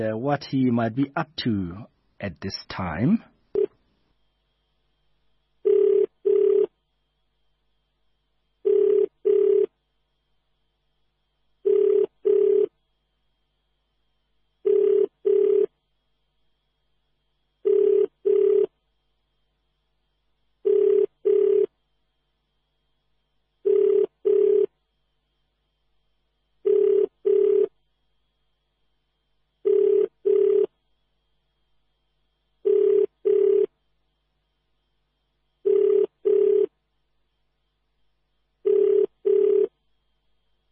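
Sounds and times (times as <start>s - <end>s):
speech: 0.0s - 3.3s
telephone ringing while a call is placed: 5.6s - 6.7s, 8.6s - 9.7s, 11.7s - 12.7s, 14.6s - 15.7s, 17.6s - 18.7s, 20.6s - 21.7s, 23.6s - 24.7s, 26.6s - 27.7s, 29.6s - 30.7s, 32.6s - 33.7s, 35.6s - 36.7s, 38.6s - 39.7s.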